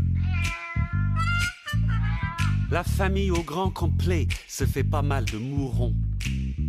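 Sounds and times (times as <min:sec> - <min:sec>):
cat meowing loudly and insistently: 0:00.2 - 0:01.5
speech: 0:02.7 - 0:06.5.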